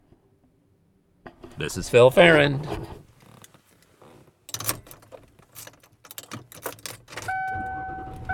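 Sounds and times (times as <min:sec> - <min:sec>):
speech: 0:01.6 - 0:03.0
objects clattering inside a car being driven around: 0:03.2 - 0:08.3
keys jangling inside a car being driven: 0:04.5 - 0:07.3.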